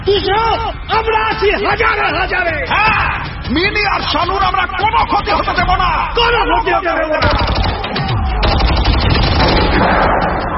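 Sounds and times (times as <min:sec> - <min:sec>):
speech: 0:00.0 - 0:07.8
volley of gunfire from a crowd toward a squad of armed shooters: 0:07.2 - 0:10.5.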